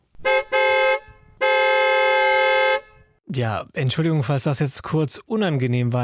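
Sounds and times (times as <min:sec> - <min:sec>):
loud car horn honking: 0:00.1 - 0:03.2
speech: 0:03.3 - 0:06.0.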